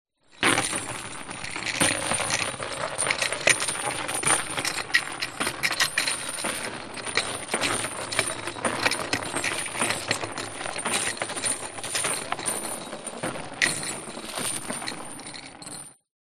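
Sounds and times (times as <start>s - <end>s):
industrial chain rattling and dragging over wood floor: 0.3s - 16.0s.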